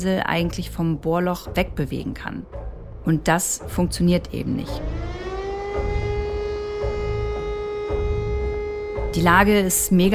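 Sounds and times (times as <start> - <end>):
speech: 0.0 - 5.0, 9.2 - 10.1
low rumbling background: 0.0 - 10.1
alarm signals sounding on a ship's bridge: 3.6 - 10.1.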